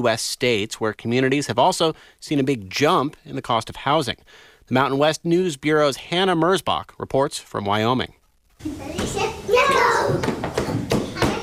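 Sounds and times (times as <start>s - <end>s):
speech: 0.0s - 10.4s
toddlers babbling and squealing at an indoor play center: 8.6s - 11.4s.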